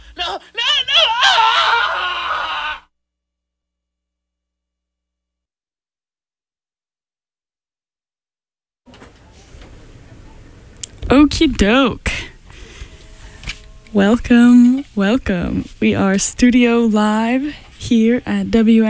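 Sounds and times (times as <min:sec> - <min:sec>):
person screaming to let off steam: 0:00.1 - 0:02.9
speech: 0:00.2 - 0:00.7, 0:11.3 - 0:12.1, 0:13.9 - 0:18.8
faint noise: 0:08.9 - 0:18.8.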